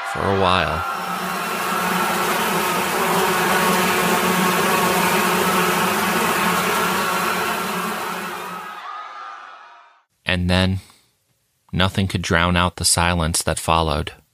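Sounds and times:
speech: 0.1s - 1.0s, 10.4s - 10.9s, 11.7s - 14.2s
swarm of flies buzzing: 0.8s - 8.8s.

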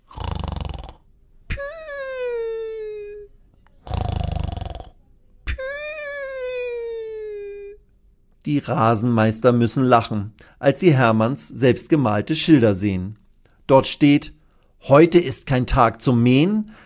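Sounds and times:
exaggerated cartoonish snores from a voice imitating a dinosaur: 0.0s - 1.1s, 3.8s - 5.0s
speech: 8.5s - 16.8s.

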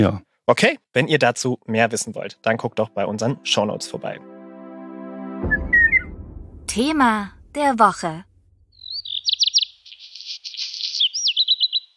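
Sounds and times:
speech: 0.0s - 4.4s, 6.7s - 8.3s
black redstart singing: 8.8s - 11.9s.

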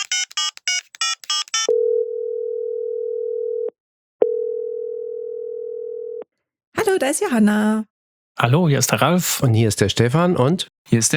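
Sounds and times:
touch-tone dialing beeps: 0.0s - 1.7s
telephone ringing tone: 0.0s - 6.2s
speech: 7.0s - 11.1s.

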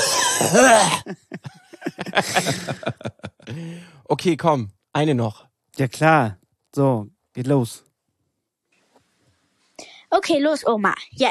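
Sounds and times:
person imitating a grandfather's loud exaggerated cough: 0.0s - 1.4s
speech: 0.4s - 7.9s, 10.1s - 11.2s
laughter: 1.0s - 3.8s.

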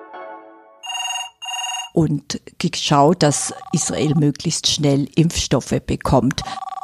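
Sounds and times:
telephone ringing with bright electronic tones: 0.8s - 2.0s, 3.2s - 4.3s, 6.4s - 6.8s
speech: 2.0s - 6.7s.

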